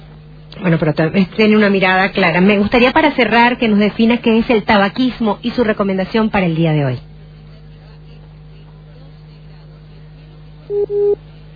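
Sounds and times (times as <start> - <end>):
faint constant low hum: 0.0 - 11.5
speech: 0.6 - 7.1
telephone line beeps after a dropped call: 10.7 - 11.2.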